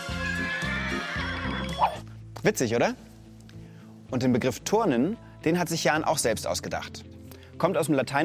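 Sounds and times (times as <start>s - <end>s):
horse neighing: 0.2s - 2.0s
speech: 2.5s - 3.1s, 4.1s - 8.2s.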